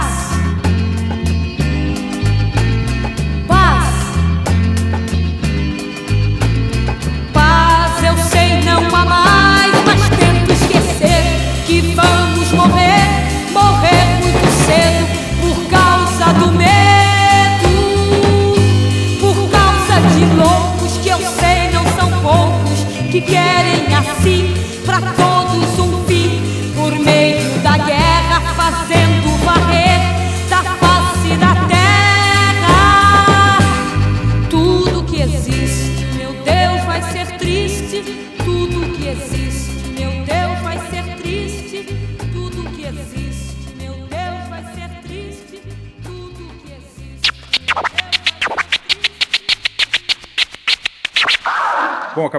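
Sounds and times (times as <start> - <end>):
recorded song playing: 0.0 - 51.4
scratchy crackling bursts: 47.2 - 51.5.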